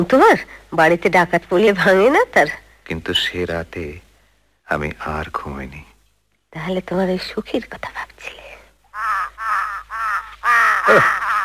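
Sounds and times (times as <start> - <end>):
speech: 0.0 - 4.0, 4.7 - 5.9, 6.5 - 8.4, 10.9 - 11.3
crow perched on a railing cawing with harsh nasal calls: 8.9 - 11.4.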